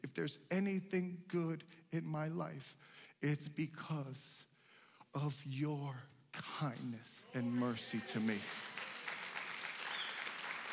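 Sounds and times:
speech: 0.2 - 4.5, 5.1 - 8.6
crowd applauding in a large room: 7.3 - 10.7.

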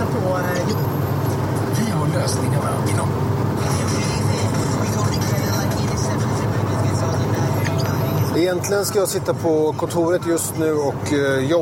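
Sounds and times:
road rumble in the cabin of a moving car: 0.0 - 11.5
speech: 2.3 - 3.3, 8.5 - 11.5.

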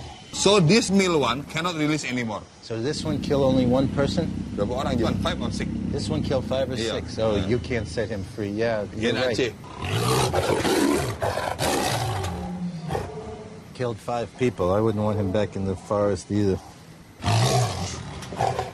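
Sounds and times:
speech: 0.4 - 11.9, 13.8 - 16.7
captive male Sumatran tiger roaring in a cage: 2.8 - 8.0, 9.6 - 13.7, 16.6 - 18.7.

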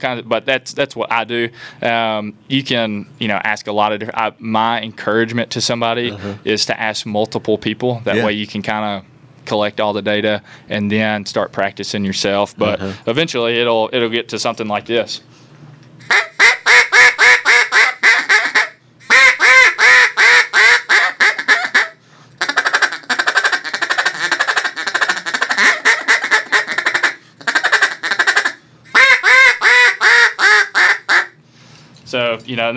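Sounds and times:
speech: 0.0 - 15.4, 32.5 - 32.7
duck call quacking and chattering: 16.0 - 31.4.

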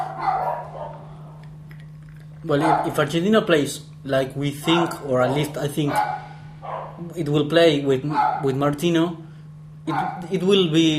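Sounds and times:
dogs barking from upstairs in the house: 0.0 - 1.2, 2.6 - 3.1, 4.6 - 7.0, 8.1 - 8.6, 9.9 - 10.4
steady low electrical hum: 0.0 - 10.9
speech: 2.4 - 6.2, 7.0 - 9.2, 9.8 - 10.9.

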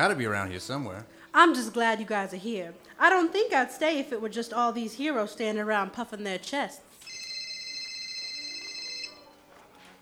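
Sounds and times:
speech: 0.0 - 6.9
telephone ringing with an electronic trill: 7.0 - 9.4.

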